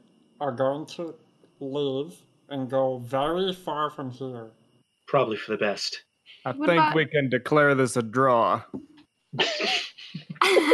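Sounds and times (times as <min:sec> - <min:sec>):
speech: 0:00.4 - 0:10.7
laughter: 0:05.2 - 0:05.9, 0:06.5 - 0:08.6, 0:09.4 - 0:10.7
person coughing raspily: 0:09.4 - 0:10.7.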